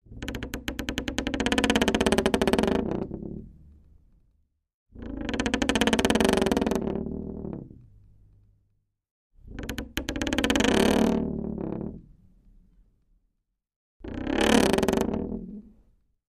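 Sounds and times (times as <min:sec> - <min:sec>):
wooden door creaking slowly: 0:00.0 - 0:03.6, 0:05.0 - 0:07.9, 0:09.4 - 0:12.2, 0:14.0 - 0:15.8.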